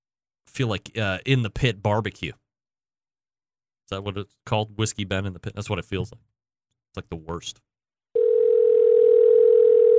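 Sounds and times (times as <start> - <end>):
speech: 0.6 - 2.4, 3.9 - 7.7
steady fax-like electronic tone on a phone line: 8.2 - 9.9.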